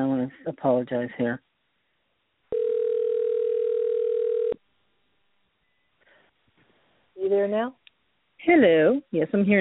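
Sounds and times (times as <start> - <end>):
speech: 0.0 - 1.5, 7.2 - 7.8, 8.4 - 9.5
telephone dial tone over a phone line: 2.5 - 4.6.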